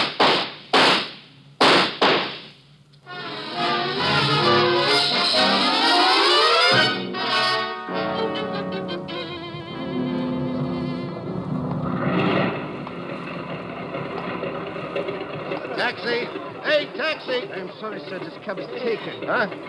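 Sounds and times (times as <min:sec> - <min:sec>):
handgun shots: 0:00.0 - 0:02.5
sustained sound: 0:03.1 - 0:18.4.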